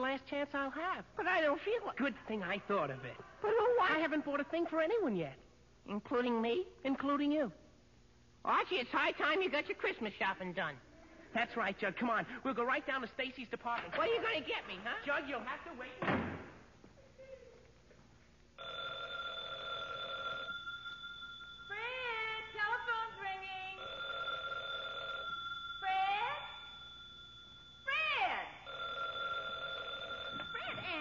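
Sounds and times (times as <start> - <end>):
speech: 0.1 - 7.6, 8.4 - 16.3
telephone bell ringing: 18.6 - 30.9.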